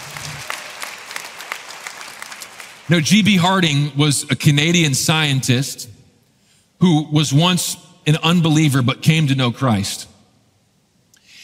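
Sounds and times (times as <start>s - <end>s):
church audience clapping during a sermon: 0.0s - 3.3s
speech: 2.9s - 6.0s, 6.8s - 10.1s.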